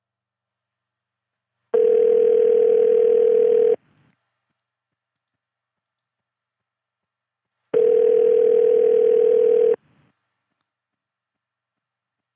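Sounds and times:
telephone ringback tone over a phone line: 0:01.8 - 0:03.8, 0:07.8 - 0:09.8.

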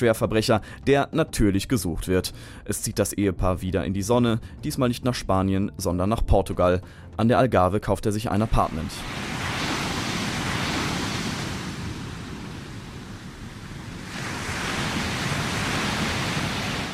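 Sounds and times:
speech: 0:00.0 - 0:09.3
Atlantic ocean waves breaking on shore: 0:08.3 - 0:16.9.

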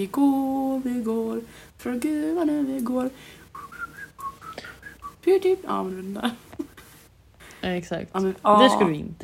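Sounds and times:
speech: 0:00.0 - 0:03.4, 0:05.2 - 0:06.5, 0:07.6 - 0:09.2
person whistling a short bouncy melody: 0:03.5 - 0:05.4.

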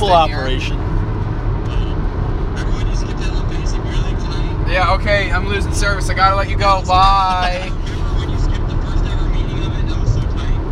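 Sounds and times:
speech: 0:00.0 - 0:00.9, 0:04.7 - 0:07.8
road noise rumble inside a moving car: 0:00.0 - 0:10.6
faint voices: 0:01.7 - 0:02.0, 0:02.6 - 0:05.8, 0:07.0 - 0:10.6.

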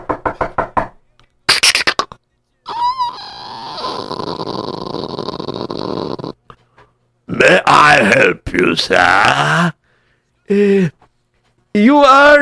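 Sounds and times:
knocking on a wooden door: 0:00.0 - 0:01.0
speech: 0:07.4 - 0:09.8, 0:10.5 - 0:11.0, 0:11.8 - 0:12.4.

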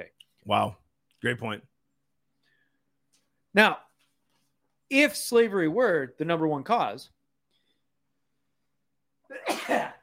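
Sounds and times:
speech: 0:00.0 - 0:01.7, 0:03.6 - 0:03.8, 0:04.9 - 0:07.2
person sneezing: 0:09.3 - 0:10.0.

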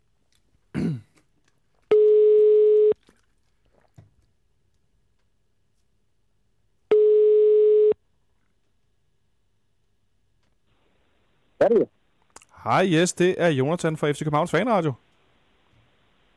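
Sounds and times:
person clearing throat: 0:00.7 - 0:01.2
telephone dial tone: 0:01.9 - 0:03.0, 0:06.9 - 0:08.0
speech: 0:12.6 - 0:15.0.

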